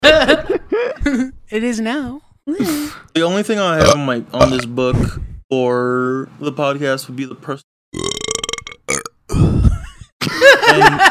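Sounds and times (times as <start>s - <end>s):
speech: 1.1s - 8.2s, 10.3s - 11.1s
loud drawn-out burp: 3.8s - 4.7s, 8.0s - 9.6s
laughter: 10.2s - 11.1s.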